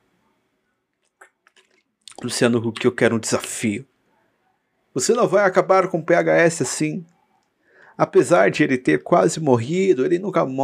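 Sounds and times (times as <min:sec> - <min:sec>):
person sipping and swallowing water: 0:01.0 - 0:02.3
speech: 0:02.2 - 0:03.9, 0:05.0 - 0:07.2, 0:08.0 - 0:10.6.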